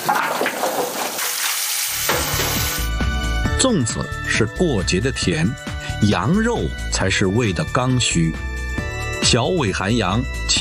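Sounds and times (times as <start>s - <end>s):
rushing splashing cold water for cooking: 0.0s - 2.9s
speech: 3.6s - 8.5s, 9.2s - 10.5s.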